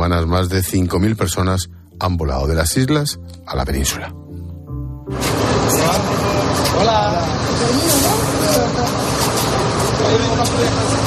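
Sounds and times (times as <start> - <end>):
speech: 0.1 - 4.2, 6.8 - 9.1, 10.1 - 11.0
street noise: 5.0 - 11.0
bus engine rumble: 5.1 - 11.0
group of people chattering getting off a bus: 5.4 - 11.0.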